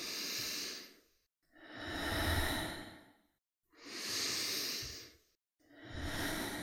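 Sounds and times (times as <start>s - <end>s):
slow deep breaths in and out: 0.0s - 6.6s.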